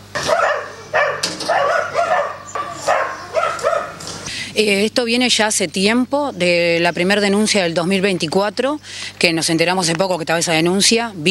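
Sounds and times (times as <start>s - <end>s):
several dogs barking and yipping, eager to get out: 0.1s - 4.3s
speech: 4.6s - 11.3s.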